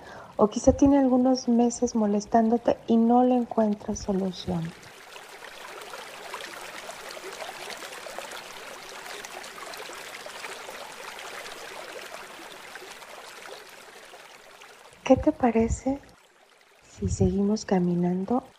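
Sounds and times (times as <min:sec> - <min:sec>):
speech: 0:00.4 - 0:04.9, 0:15.1 - 0:16.1, 0:17.0 - 0:18.5
river rushing over rocks: 0:04.0 - 0:16.8.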